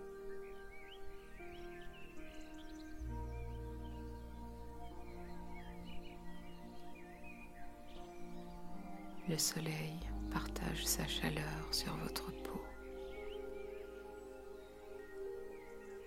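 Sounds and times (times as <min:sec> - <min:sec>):
birds singing outdoors: 0:00.0 - 0:16.0
low sustained musical drone: 0:00.0 - 0:16.0
speech: 0:09.3 - 0:12.7.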